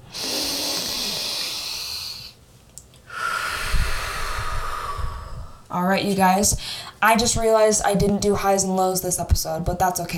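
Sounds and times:
person taking a big deep breath during a guided breathing exercise: 0.0 - 2.4, 3.1 - 5.7
speech: 5.8 - 10.1.

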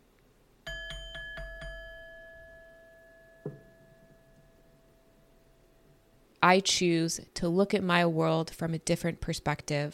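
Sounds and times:
bright bell dinging: 0.7 - 5.2
speech: 6.4 - 9.9.

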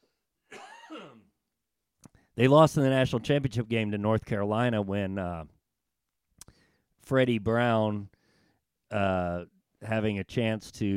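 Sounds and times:
person coughing: 0.5 - 1.3
speech: 2.4 - 5.6, 7.1 - 8.2, 8.9 - 10.9.

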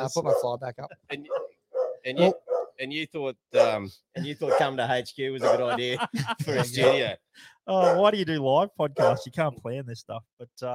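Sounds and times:
speech: 0.0 - 10.7
dog barking in a studio: 0.2 - 0.6, 1.3 - 2.8, 3.6 - 3.8, 4.4 - 5.8, 6.6 - 7.1, 7.8 - 8.1, 8.9 - 9.3
laughter: 4.2 - 7.2.

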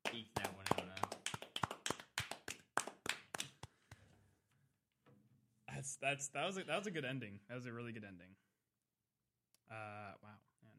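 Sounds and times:
hands clapping: 0.0 - 4.1
speech: 5.8 - 8.5, 9.7 - 10.5.

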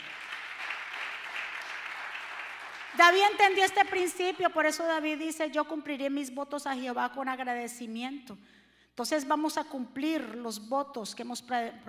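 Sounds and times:
crowd applauding loudly: 0.0 - 3.2
speech: 3.0 - 11.8.

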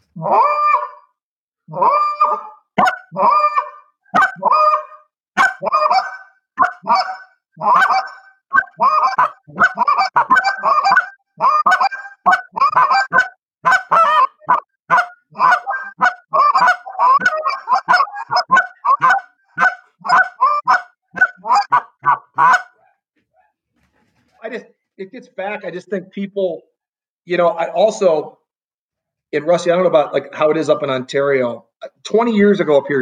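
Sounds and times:
goose calls blown by two men imitating a flock of geese: 0.1 - 22.9
speech: 0.2 - 0.5, 1.7 - 2.0, 25.4 - 26.7, 27.3 - 28.3, 29.3 - 33.0.

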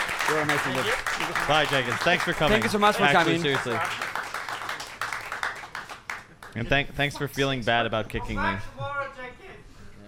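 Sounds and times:
small group clapping: 0.0 - 6.7
speech: 0.3 - 4.1, 6.6 - 9.7.

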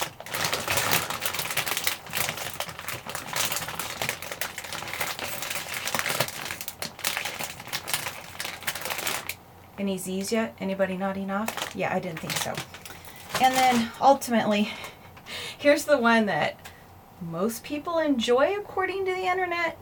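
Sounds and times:
bag rustling and crinkling: 0.0 - 9.4, 11.4 - 14.1
speech: 9.8 - 12.8, 13.4 - 14.9, 15.6 - 16.6, 17.2 - 19.8.

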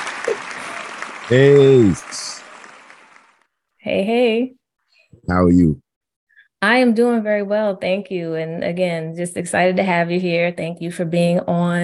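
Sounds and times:
applause: 0.0 - 3.5
speech: 1.3 - 2.3, 3.8 - 5.8, 6.6 - 11.8.

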